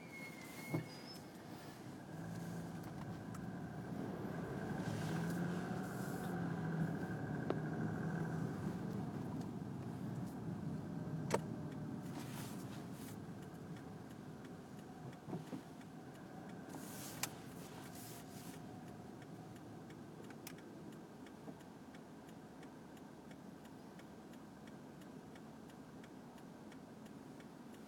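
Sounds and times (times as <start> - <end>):
cars passing by with engine and tire rumble: 0.4 - 22.6.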